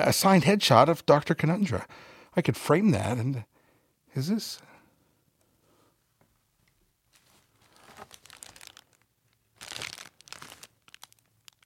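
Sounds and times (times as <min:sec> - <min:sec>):
speech: 0:00.0 - 0:03.5, 0:04.1 - 0:04.7
packing paper crinkling and rustling: 0:07.1 - 0:11.6.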